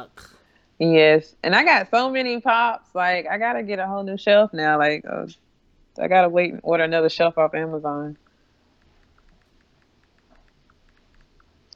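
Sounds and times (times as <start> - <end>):
speech: 0.0 - 5.4, 6.0 - 8.2
typing a text message on a phone: 8.1 - 11.7.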